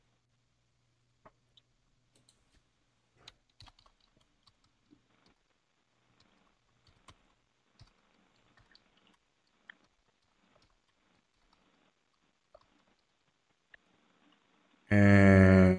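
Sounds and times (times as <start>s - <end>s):
typing on a computer keyboard: 3.2s - 5.4s, 6.2s - 13.1s
speech: 14.9s - 15.3s.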